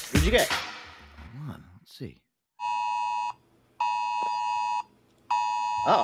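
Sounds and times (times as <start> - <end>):
speech: 0.2 - 0.7, 1.4 - 2.2, 5.8 - 6.0
phone Amber Alert emergency tone: 2.6 - 6.0.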